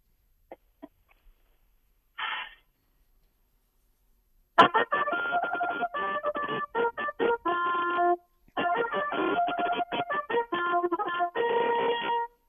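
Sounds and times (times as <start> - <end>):
solo trumpet playing a fanfare: 4.6 - 12.4.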